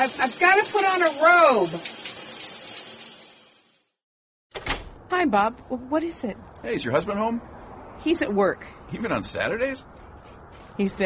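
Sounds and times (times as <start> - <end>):
speech: 0.0 - 2.0, 5.2 - 10.0, 10.8 - 11.0
shower water running: 0.0 - 4.0.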